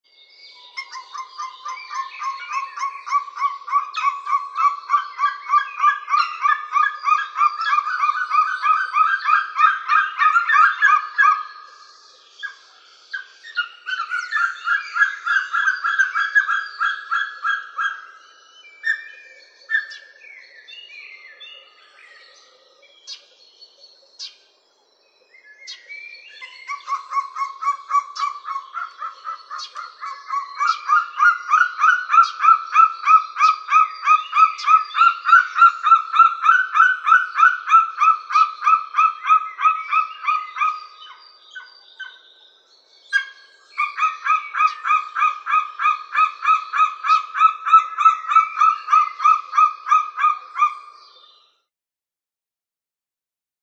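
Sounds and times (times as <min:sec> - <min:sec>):
white-tailed eagle calling: 0:00.8 - 0:11.5, 0:13.2 - 0:18.2, 0:26.4 - 0:42.2, 0:43.1 - 0:50.9.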